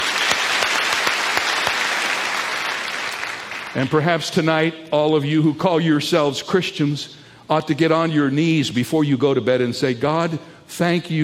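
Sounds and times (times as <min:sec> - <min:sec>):
crowd applauding: 0:00.0 - 0:04.0
speech: 0:03.8 - 0:11.2.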